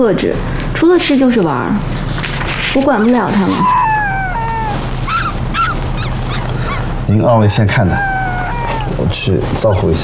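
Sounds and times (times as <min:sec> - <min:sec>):
speech: 0:00.0 - 0:02.0, 0:02.8 - 0:03.8, 0:07.1 - 0:08.1, 0:09.0 - 0:10.0
low rumble: 0:01.0 - 0:10.0
dog in a bookshop whining and whimpering: 0:02.8 - 0:09.3.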